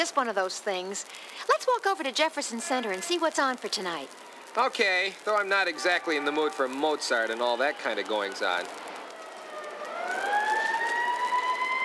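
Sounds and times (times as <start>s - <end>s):
speech: 0.0s - 8.9s
police car sirens wailing: 5.8s - 11.8s.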